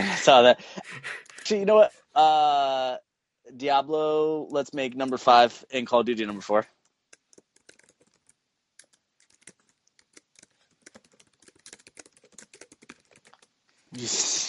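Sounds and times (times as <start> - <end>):
speech: 0.2 - 6.8, 14.0 - 14.4
rapid typing on a computer keyboard: 7.1 - 13.5.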